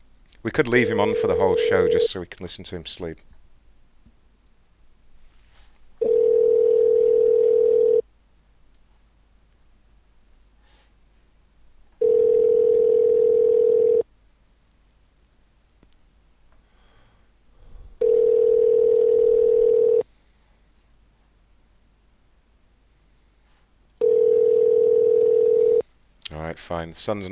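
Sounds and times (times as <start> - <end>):
speech: 0.4 - 3.3, 26.7 - 27.3
ringback tone of an outgoing telephone call going unanswered: 1.0 - 2.1, 6.0 - 8.0, 12.0 - 14.0, 18.0 - 20.0, 24.0 - 25.8.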